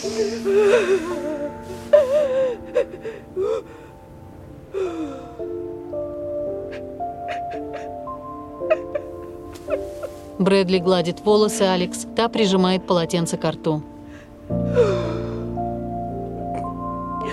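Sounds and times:
speech: 0:00.0 - 0:03.9, 0:04.7 - 0:06.1, 0:09.7 - 0:13.9
ragged gasping breaths of a woman who has been crying: 0:00.0 - 0:04.1, 0:04.7 - 0:05.5, 0:14.0 - 0:15.6
quiet tonal background: 0:00.0 - 0:17.3.

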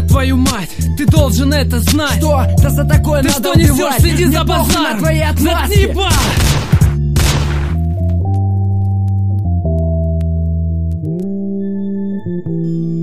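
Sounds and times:
sustained low electronic drone stepping between pitches: 0:00.0 - 0:13.0
speech: 0:00.2 - 0:06.6
loud booming gunshots: 0:06.1 - 0:07.8.

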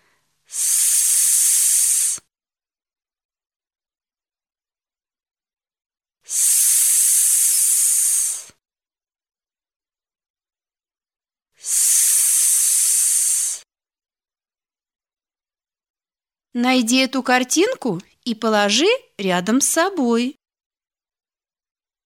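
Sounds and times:
air hissing out of a burst balloon: 0:00.5 - 0:02.3, 0:06.3 - 0:08.6, 0:11.6 - 0:13.7
speech: 0:16.6 - 0:20.4.

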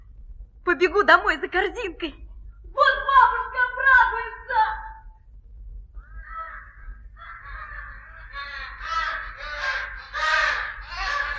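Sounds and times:
low steady rumble: 0:00.0 - 0:11.3
speech: 0:00.8 - 0:02.2
flock of wild ducks, geese, swans and gulls calling at the seashore: 0:06.3 - 0:11.3.

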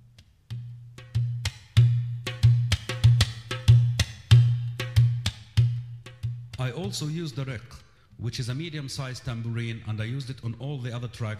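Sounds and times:
dohola bass tabla drum being played: 0:00.0 - 0:07.7
speech: 0:06.6 - 0:11.3.

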